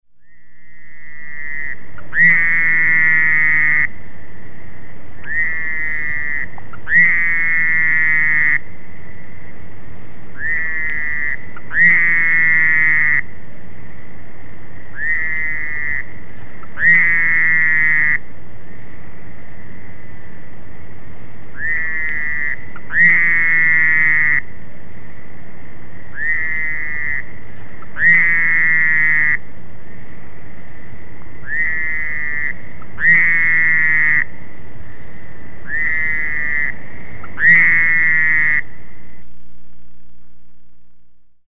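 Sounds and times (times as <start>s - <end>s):
Fowler's toad: 0.2s - 4.0s, 5.2s - 9.4s, 10.3s - 13.4s, 14.9s - 18.3s, 21.5s - 24.6s, 26.1s - 30.2s, 30.8s - 39.3s.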